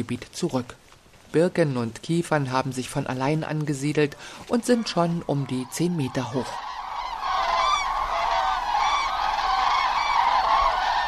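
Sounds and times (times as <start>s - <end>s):
speech: 0.0s - 6.7s
large flock of geese honking: 4.2s - 11.0s.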